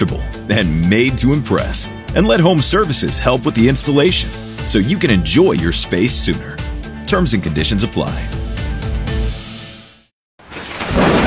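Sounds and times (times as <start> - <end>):
speech: 0.1 - 8.4
thunder rumbling: 10.5 - 11.2.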